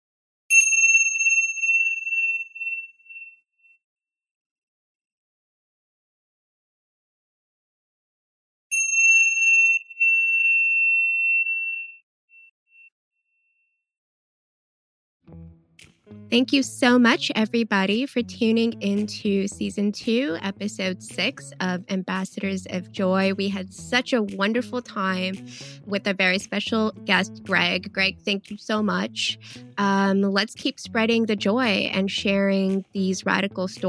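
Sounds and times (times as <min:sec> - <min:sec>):
clear bright metallic chime strikes: 0:00.5 - 0:03.3, 0:08.7 - 0:12.0
speech: 0:16.1 - 0:33.8.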